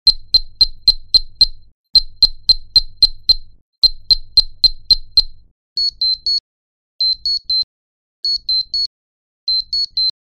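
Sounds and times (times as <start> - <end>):
small bleeps: 0.0 - 6.4.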